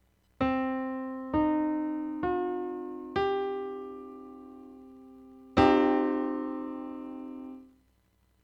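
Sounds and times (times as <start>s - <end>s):
Orwell temperament notes in 22 equal divisions of the octave: 0.4s - 7.7s.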